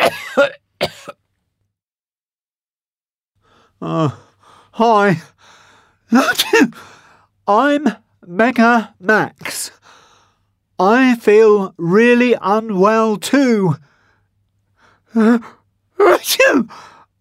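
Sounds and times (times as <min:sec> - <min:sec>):
person coughing harshly: 0:00.0 - 0:01.2
speech: 0:00.1 - 0:00.6, 0:03.8 - 0:06.9, 0:07.5 - 0:09.8, 0:10.8 - 0:13.9, 0:15.1 - 0:16.9.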